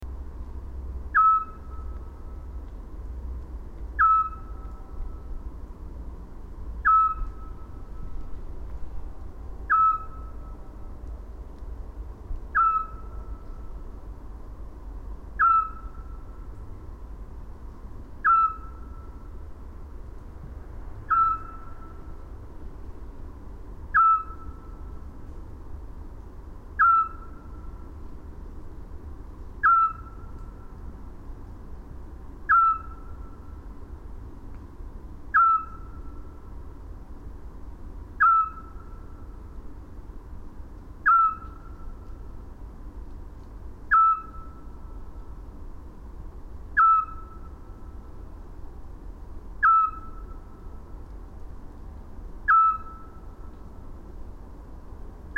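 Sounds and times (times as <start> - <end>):
Eurasian scops owl Zwergohreule calling: 1.1 - 2.6, 3.9 - 5.3, 6.8 - 8.3, 9.6 - 10.8, 12.5 - 13.8, 15.3 - 16.5, 18.2 - 19.4, 21.0 - 22.2, 23.9 - 25.0, 26.7 - 27.9, 29.6 - 30.8, 32.4 - 33.6, 35.3 - 36.4, 38.2 - 39.4, 41.0 - 42.3, 43.8 - 45.2, 46.7 - 47.8, 49.6 - 50.8, 52.4 - 53.4.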